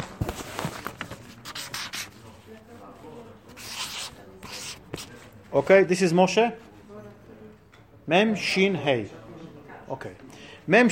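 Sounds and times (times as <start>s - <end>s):
pen scratching on paper: 1.4s - 2.2s, 3.5s - 5.1s
speech: 5.5s - 6.7s, 8.1s - 9.2s, 9.9s - 10.9s.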